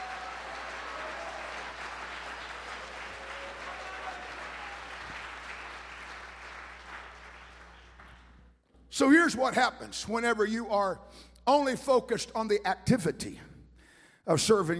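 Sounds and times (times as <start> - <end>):
audience clapping: 0.0 - 8.5
speech: 9.0 - 13.5, 14.3 - 14.7.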